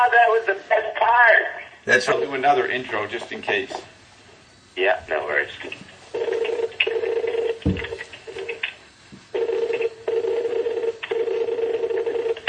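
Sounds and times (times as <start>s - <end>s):
speech: 0.0s - 4.0s, 4.8s - 6.4s
telephone dialing tones of callers ringing in: 6.1s - 7.6s, 9.4s - 12.4s
low thump: 7.6s - 8.0s.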